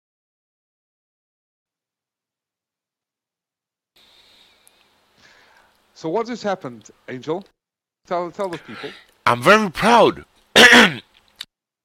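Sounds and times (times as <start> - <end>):
faint clicks: 4.4 - 5.9
speech: 6.0 - 11.1
single loud rough throat clearing: 10.6 - 11.1.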